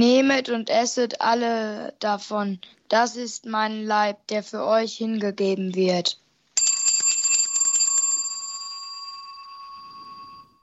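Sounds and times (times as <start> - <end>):
speech: 0.0 - 6.2
cluster of small altar bells jingling during consecration at Mass: 6.6 - 10.6.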